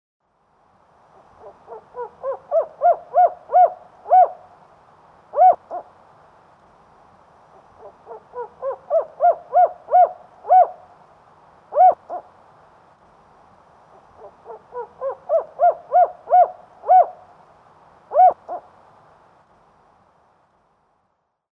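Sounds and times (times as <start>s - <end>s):
spotted owl calling: 1.2s - 4.6s, 5.3s - 5.9s, 7.6s - 10.9s, 11.7s - 12.3s, 13.9s - 17.3s, 18.1s - 18.7s.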